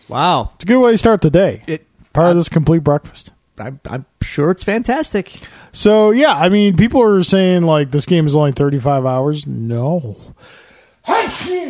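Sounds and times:
speech: 0.1 - 11.6
loud sneeze: 11.0 - 11.6.

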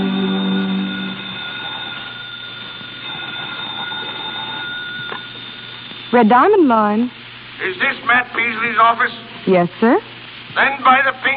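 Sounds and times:
telephone ringing with a harsh buzzing tone: 0.0 - 6.5
steady low hum and faint whine: 0.0 - 11.3
speech: 6.1 - 11.3.

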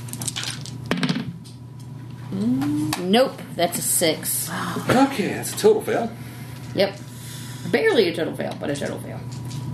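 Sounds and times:
dice rolling on a table during a game: 0.2 - 1.3
speech: 2.3 - 9.6.

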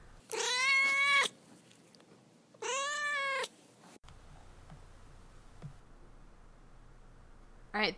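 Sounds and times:
faint room noise: 0.0 - 7.9
house cat meowing: 0.3 - 1.3, 2.6 - 3.5
speech: 7.8 - 7.9.

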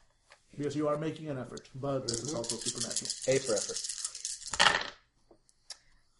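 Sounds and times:
speech: 0.6 - 4.0
dice clattering across a hard tabletop: 2.1 - 5.0.

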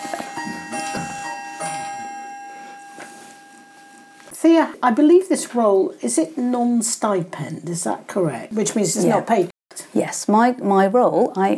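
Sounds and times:
clock chiming: 0.0 - 4.3
speech: 4.4 - 11.5.

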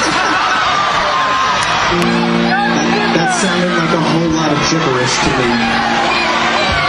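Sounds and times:
laughter: 0.0 - 5.0
concert crowd yelling out song requests: 0.0 - 6.8
speech: 1.9 - 2.2, 3.3 - 6.2.

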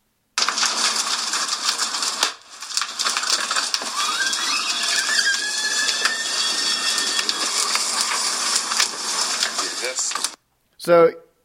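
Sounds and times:
car fire roaring and crackling: 0.4 - 10.4
speech: 10.8 - 11.2.

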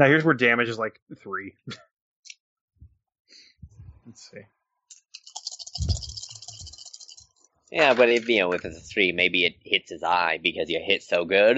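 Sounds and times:
speech: 0.0 - 1.9, 4.1 - 4.6, 7.7 - 11.5
dice clattering across a hard tabletop during a game: 5.1 - 8.7.

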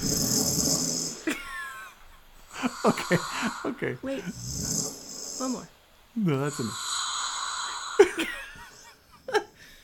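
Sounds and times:
loud snoring with rattling breath and whistling wheeze: 0.0 - 1.3, 2.5 - 5.7, 6.5 - 8.1
speech: 2.6 - 4.8, 5.4 - 6.9.

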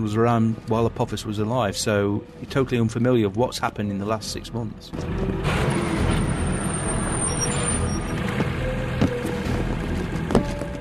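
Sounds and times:
speech: 0.0 - 5.8
heavy trucks driving past: 4.9 - 10.7.

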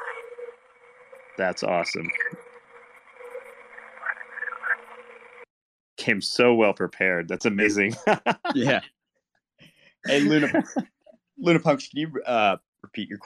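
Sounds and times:
speech: 1.3 - 2.5, 6.1 - 8.9, 10.0 - 13.2
laughter: 1.4 - 2.1, 6.0 - 8.8, 10.1 - 10.8, 11.4 - 13.2
voice imitating a croaking toad with a buzzing trill: 1.4 - 2.1, 6.0 - 8.8, 10.1 - 10.7.

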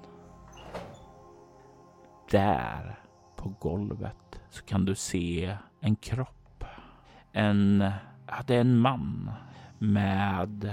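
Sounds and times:
elevator door sliding open: 0.4 - 1.2
speech: 2.3 - 6.4, 7.3 - 10.7.

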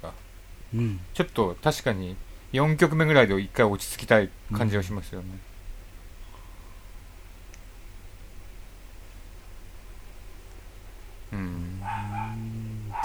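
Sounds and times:
speech: 0.0 - 5.5
steady hiss: 0.0 - 13.0
dog barking outside the house: 11.8 - 13.0.

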